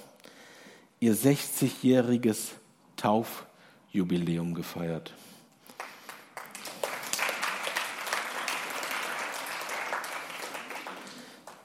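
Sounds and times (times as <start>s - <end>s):
speech: 1.0s - 5.3s
audience applause: 5.8s - 11.6s.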